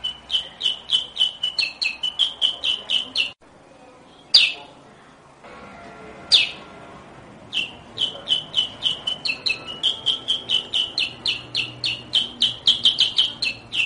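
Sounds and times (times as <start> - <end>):
sooty-headed bulbul chirping: 0.0 - 3.4, 4.2 - 4.7, 6.3 - 6.7, 7.5 - 13.8.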